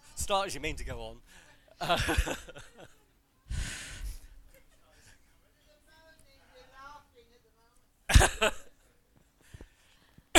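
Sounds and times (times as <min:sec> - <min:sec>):
speech: 0:00.3 - 0:03.0, 0:08.2 - 0:08.7
laughter: 0:01.6 - 0:03.1, 0:04.4 - 0:05.3
harsh coughing and throat clearing: 0:08.1 - 0:08.7.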